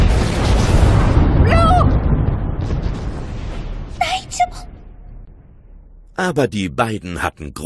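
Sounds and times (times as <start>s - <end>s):
dynamite explosion: 0.0s - 6.1s
speech: 6.3s - 7.6s.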